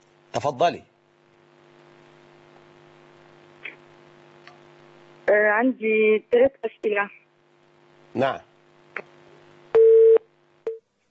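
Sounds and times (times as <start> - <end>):
speech: 0.4 - 0.9, 5.5 - 7.2, 8.1 - 9.1
telephone busy tone after a call is disconnected: 9.8 - 10.8.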